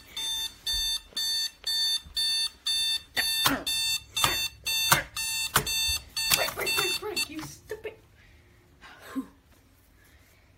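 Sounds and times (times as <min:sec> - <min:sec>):
alarm clock ringing with sharp electronic beeps: 0:00.0 - 0:07.5.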